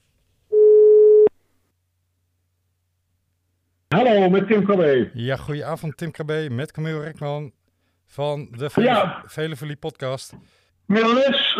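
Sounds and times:
telephone dialing tone: 0:00.5 - 0:01.3
speech: 0:04.2 - 0:11.5.

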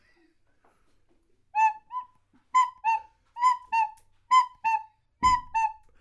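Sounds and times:
recorder playing two-note cuckoo call: 0:01.6 - 0:05.8
brief knock: 0:05.2 - 0:05.6.

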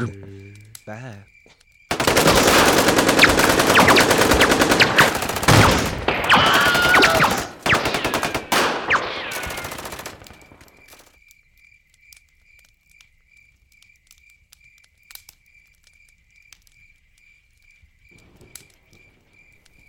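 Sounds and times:
speech: 0:00.0 - 0:01.4
rapid automatic gunfire: 0:01.9 - 0:11.0.

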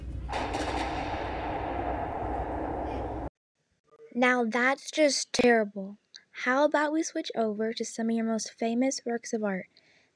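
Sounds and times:
cannon fire barrage: 0:00.3 - 0:03.3
speech: 0:04.2 - 0:09.8.

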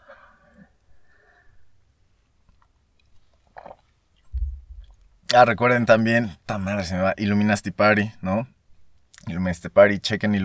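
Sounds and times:
person sipping coffee and swallowing: 0:03.5 - 0:05.1
low thud: 0:04.3 - 0:05.2
speech: 0:05.3 - 0:08.6, 0:09.3 - 0:10.4.

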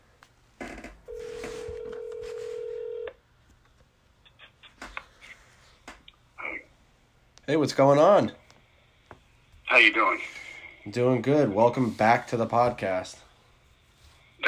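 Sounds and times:
telephone ringing tone: 0:01.1 - 0:03.2
speech: 0:07.5 - 0:08.4, 0:09.8 - 0:13.2.

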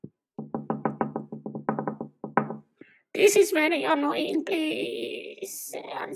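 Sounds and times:
knocking on glass: 0:00.0 - 0:02.7
speech: 0:03.1 - 0:06.1.

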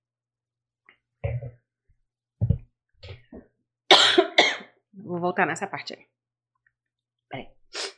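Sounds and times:
person coughing: 0:03.9 - 0:04.8
speech: 0:05.2 - 0:06.2.

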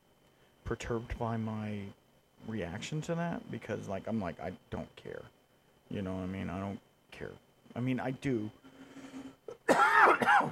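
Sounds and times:
quiet breath: 0:00.2 - 0:00.6, 0:08.6 - 0:09.4
speech: 0:00.7 - 0:08.6, 0:10.2 - 0:10.5
harsh cough: 0:09.5 - 0:10.5.

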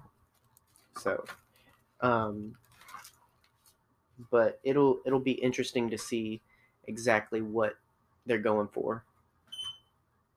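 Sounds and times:
speech: 0:01.0 - 0:01.4, 0:02.0 - 0:02.7, 0:04.2 - 0:09.1
high pure-toned electronic beep signaling to move on: 0:09.5 - 0:09.9.

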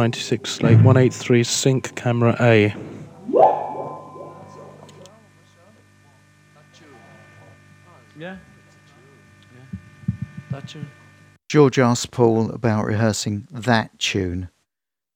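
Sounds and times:
speech: 0:00.0 - 0:03.6, 0:08.2 - 0:08.5, 0:10.5 - 0:14.5
electrical hum: 0:00.0 - 0:11.3
vocal whoop through a tape echo unit: 0:03.3 - 0:04.9.

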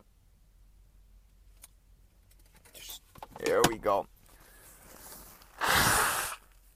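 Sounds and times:
speech: 0:03.8 - 0:04.1
nose blowing into a napkin: 0:05.5 - 0:06.5.

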